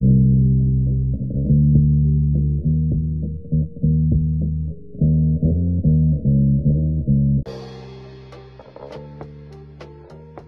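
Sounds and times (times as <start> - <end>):
bass loop: 0.0 - 10.4.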